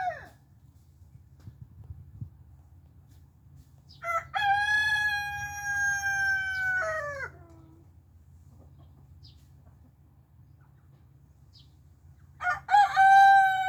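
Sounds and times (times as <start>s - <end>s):
rooster crowing: 4.0s - 7.3s, 12.4s - 13.6s.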